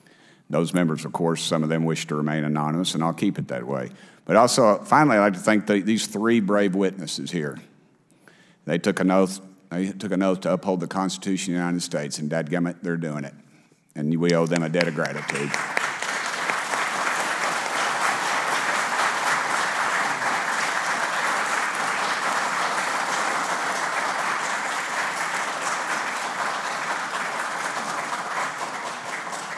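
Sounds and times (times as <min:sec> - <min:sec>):
speech: 0:00.5 - 0:07.7, 0:08.7 - 0:13.4, 0:14.0 - 0:15.8
audience applause in hearing room: 0:14.3 - 0:29.5.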